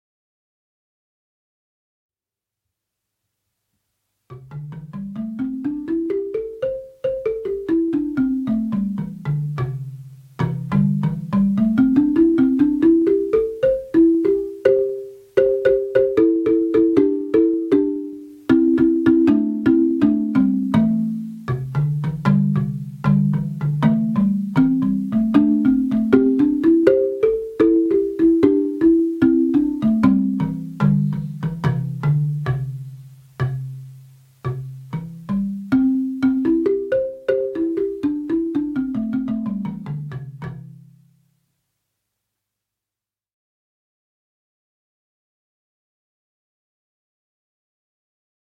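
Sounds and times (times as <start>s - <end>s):
grand marimba: 4.3s - 41.2s.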